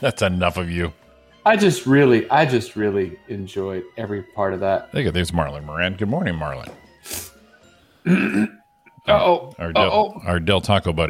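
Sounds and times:
speech: 0:00.0 - 0:07.3, 0:08.0 - 0:11.0
loud rough throat clearing: 0:08.0 - 0:08.6.

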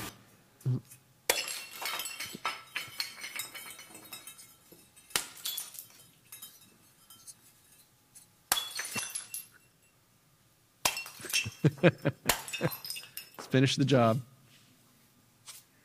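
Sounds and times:
old ceramic pottery being smashed: 0:01.2 - 0:09.8, 0:10.8 - 0:13.6
speech: 0:11.6 - 0:12.8, 0:13.5 - 0:14.3.

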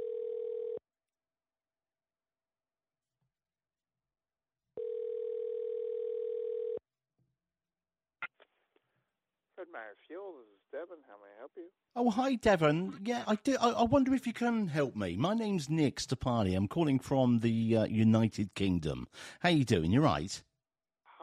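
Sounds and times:
telephone dial tone after caller hangs up: 0:00.0 - 0:00.8, 0:04.8 - 0:06.8
speech: 0:09.6 - 0:20.5.

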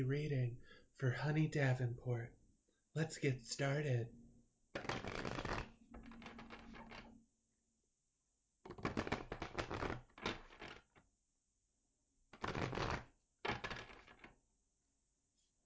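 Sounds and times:
speech: 0:00.0 - 0:04.2, 0:04.8 - 0:05.0
tarot cards being shuffled: 0:04.8 - 0:07.1, 0:08.7 - 0:11.0, 0:12.3 - 0:14.3.

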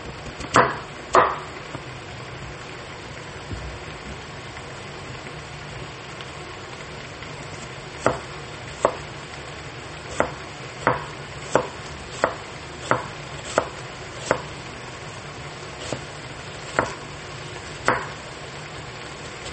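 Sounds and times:
knife chopping a large onion on a board: 0:00.4 - 0:01.5, 0:08.0 - 0:09.0, 0:10.1 - 0:14.5, 0:15.8 - 0:17.0, 0:17.8 - 0:18.2.

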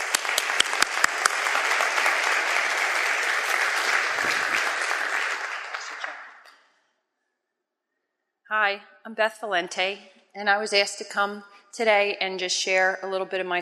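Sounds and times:
crowd clapping: 0:00.0 - 0:06.6
speech: 0:08.6 - 0:13.6.

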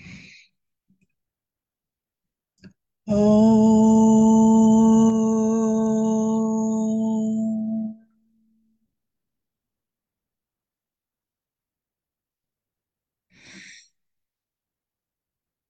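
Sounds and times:
group chanting om on the out-breath: 0:03.1 - 0:08.1
soft inhale: 0:13.3 - 0:14.0.

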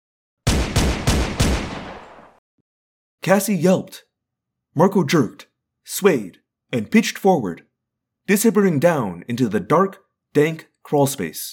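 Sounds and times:
pistol gunshots: 0:00.5 - 0:02.4
speech: 0:03.2 - 0:04.1, 0:04.8 - 0:07.7, 0:08.3 - 0:11.5.

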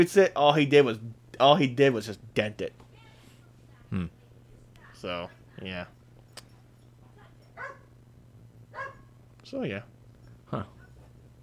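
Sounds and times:
speech: 0:00.0 - 0:02.8, 0:03.9 - 0:04.2, 0:05.0 - 0:06.0, 0:09.5 - 0:09.9, 0:10.5 - 0:10.8
steady low hum: 0:03.5 - 0:11.4
dog barking: 0:07.6 - 0:07.9, 0:08.7 - 0:09.2.

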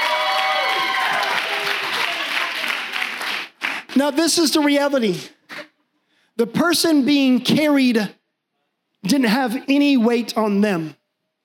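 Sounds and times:
audience applauding a pastor: 0:00.0 - 0:04.3
speech: 0:04.0 - 0:05.4, 0:06.4 - 0:08.2, 0:09.0 - 0:11.0.

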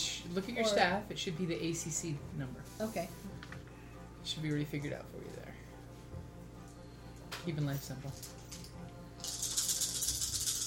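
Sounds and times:
speech: 0:00.2 - 0:05.6, 0:07.4 - 0:08.4
handful of dice rattling and rolling for an attack roll: 0:08.1 - 0:10.6.

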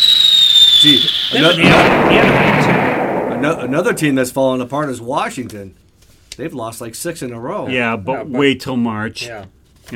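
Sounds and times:
high whistle gliding downward: 0:00.0 - 0:03.7
speech: 0:00.8 - 0:05.8, 0:06.4 - 0:09.9
loud booming thump rumbling away: 0:01.6 - 0:04.4.

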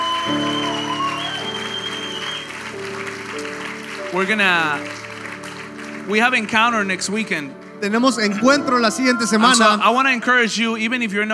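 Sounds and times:
audience applauding: 0:00.0 - 0:10.2
sustained keyboard chords: 0:02.5 - 0:11.0
speech: 0:04.1 - 0:05.0, 0:06.1 - 0:11.3.

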